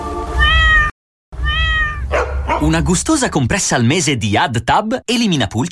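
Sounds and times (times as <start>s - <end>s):
cat meowing: 0.4s - 2.2s
speech: 2.7s - 5.7s.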